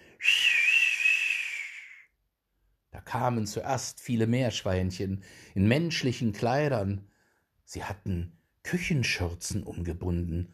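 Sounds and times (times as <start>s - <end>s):
old woman whistling a high note: 0.2s - 2.1s
speech: 3.1s - 7.1s, 7.7s - 10.5s.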